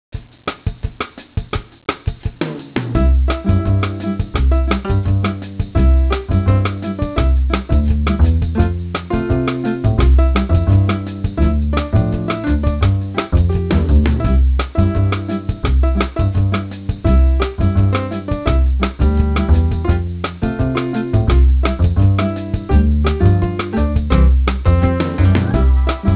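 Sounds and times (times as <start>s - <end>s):
bossa nova tune: 3.0s - 26.1s.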